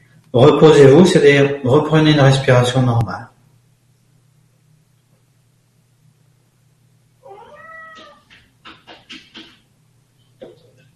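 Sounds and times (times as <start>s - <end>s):
speech: 0.3s - 3.3s
cat meowing: 7.2s - 8.3s.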